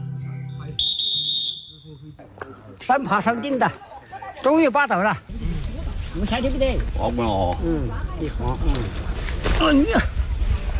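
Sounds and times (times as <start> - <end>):
whistle blown on a mountain climb: 0.4 - 2.0
speech: 2.0 - 5.4, 6.2 - 10.1.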